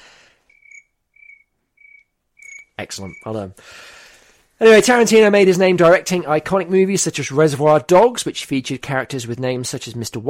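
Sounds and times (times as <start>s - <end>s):
crickets chirping as a sound effect: 0.5s - 3.5s
speech: 2.8s - 4.0s, 4.6s - 10.2s.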